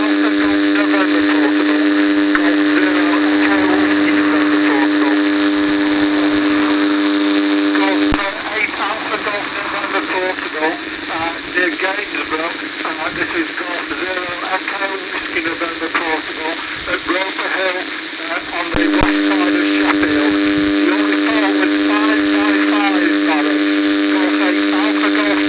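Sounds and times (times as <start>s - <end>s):
comb filter test tone for optical comms on a PIC: 0.0s - 25.4s.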